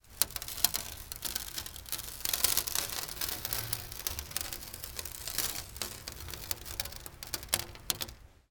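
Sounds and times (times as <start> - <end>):
sand pouring on glass: 0.0 - 8.2.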